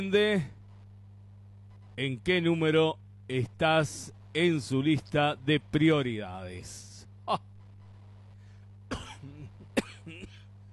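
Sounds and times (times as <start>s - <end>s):
speech: 0.0s - 0.6s, 2.0s - 7.5s
low steady hum: 0.0s - 10.7s
person coughing: 8.9s - 10.5s.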